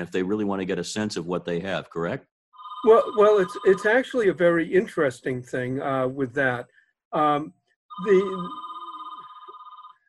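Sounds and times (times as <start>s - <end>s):
speech: 0.0s - 8.7s
telephone ringing with pulsing electronic trill: 2.6s - 4.3s, 7.9s - 10.0s.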